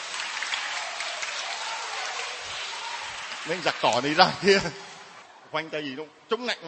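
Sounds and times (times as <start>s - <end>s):
crowd clapping: 0.0s - 5.3s
speech: 3.4s - 4.9s, 5.5s - 6.6s.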